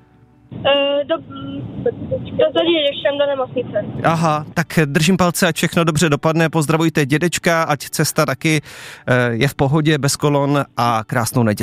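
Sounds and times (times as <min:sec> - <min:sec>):
road and engine rumble in the cabin of a moving car: 0:00.0 - 0:08.5
speech: 0:00.6 - 0:11.6.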